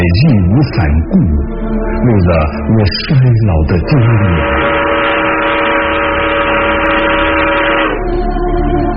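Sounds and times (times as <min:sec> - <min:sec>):
speech: 0:00.0 - 0:04.7
distant train whistle: 0:04.4 - 0:08.0.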